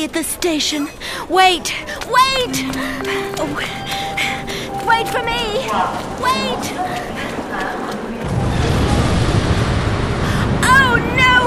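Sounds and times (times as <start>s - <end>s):
speech: 0.0s - 8.0s
explosion with deep booming rumble: 8.2s - 11.4s.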